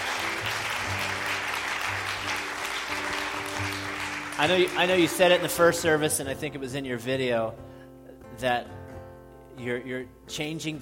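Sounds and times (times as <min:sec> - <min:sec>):
crowd applauding in a large room: 0:00.0 - 0:06.2
speech: 0:04.4 - 0:07.7, 0:08.4 - 0:08.8, 0:09.6 - 0:10.7.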